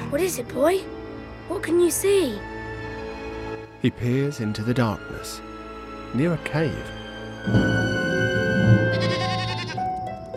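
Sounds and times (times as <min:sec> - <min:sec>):
speech: 0:00.1 - 0:02.6, 0:03.8 - 0:05.5, 0:06.1 - 0:07.9
lamb bleating in darkness near a cave: 0:08.8 - 0:09.9.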